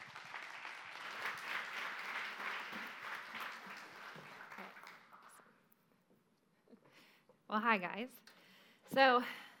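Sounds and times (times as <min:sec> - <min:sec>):
audience applause welcoming a speaker: 0:00.0 - 0:05.4
scattered claps: 0:00.0 - 0:05.4
speech: 0:07.5 - 0:08.3, 0:09.0 - 0:09.4.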